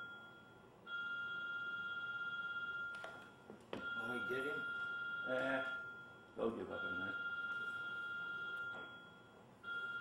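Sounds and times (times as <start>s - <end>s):
cell phone ringing with a high electronic tone: 0.0s - 9.9s
speech: 4.2s - 5.8s, 6.4s - 7.3s.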